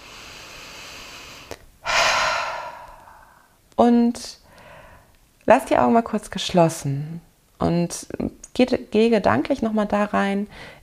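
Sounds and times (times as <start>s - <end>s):
deep breath in and out: 0.0s - 3.6s, 4.5s - 5.1s
speech: 3.9s - 4.4s, 5.5s - 10.8s.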